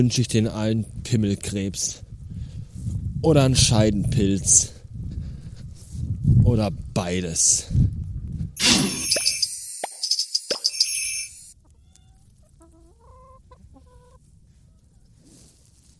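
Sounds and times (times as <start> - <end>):
speech: 0.0 - 2.0, 2.8 - 4.8, 6.3 - 9.0
plump chickens clucking at a fence: 11.6 - 15.1.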